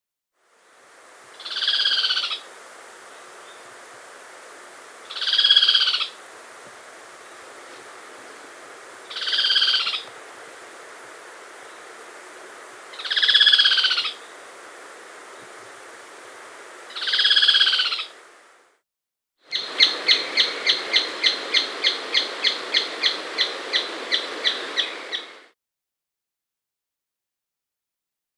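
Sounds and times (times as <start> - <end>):
Andean Striped Treehunter Thripadectes holostictus calling: 1.4 - 2.5, 5.0 - 6.2, 9.0 - 10.1, 12.9 - 14.5, 16.9 - 18.2, 19.5 - 25.4.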